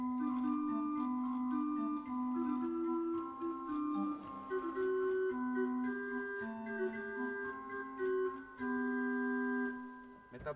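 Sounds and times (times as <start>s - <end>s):
pipe organ playing a Christmas chorale prelude: 0.0s - 10.2s.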